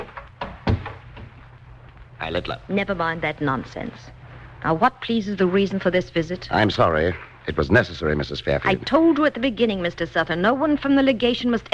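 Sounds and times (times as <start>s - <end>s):
door shutting with a solid thud: 0.0s - 1.3s
lighter knock of handling the door: 0.0s - 1.4s
speech: 2.2s - 11.7s.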